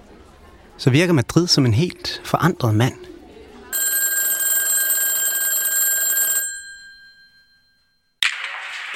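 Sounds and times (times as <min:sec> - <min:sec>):
speech: 0:00.8 - 0:03.1
telephone bell ringing: 0:03.7 - 0:08.2.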